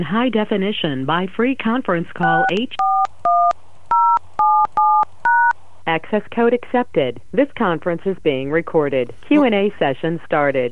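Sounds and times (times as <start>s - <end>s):
speech: 0.0s - 2.9s, 6.0s - 10.7s
telephone keypad tones dialing into a conference call line: 2.2s - 5.5s.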